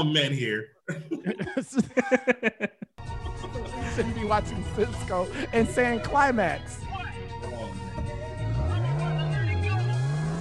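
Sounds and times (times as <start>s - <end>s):
speech: 0.0s - 6.8s
laughter: 0.9s - 6.4s
Porsche Carrera sports car engine revving as it drives off: 7.8s - 10.3s.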